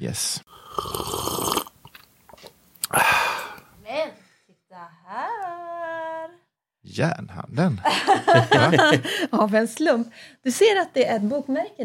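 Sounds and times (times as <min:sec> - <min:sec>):
speech: 0:00.0 - 0:01.2, 0:07.0 - 0:11.8
person slurping a drink: 0:00.5 - 0:03.7
mouth clicks: 0:02.8 - 0:03.7
laughter: 0:07.8 - 0:09.3.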